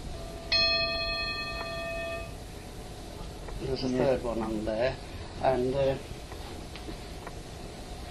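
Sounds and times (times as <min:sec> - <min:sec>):
old brass mine winding-house bell being struck: 0:00.0 - 0:02.4
speech: 0:03.6 - 0:06.1.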